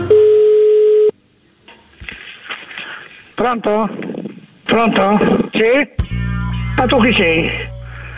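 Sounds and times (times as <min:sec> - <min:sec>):
telephone dial and busy tones as a call is placed: 0:00.1 - 0:01.2
speech: 0:03.4 - 0:04.1, 0:04.7 - 0:06.0, 0:06.8 - 0:07.7.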